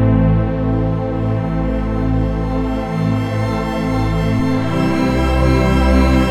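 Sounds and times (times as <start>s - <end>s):
Yamaha SY77 vintage synth pad: 0.2s - 6.2s.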